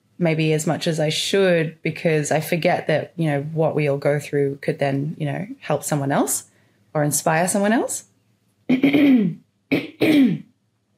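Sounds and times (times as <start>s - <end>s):
speech: 0.2s - 8.1s, 8.7s - 10.5s
person clearing throat: 8.7s - 10.5s.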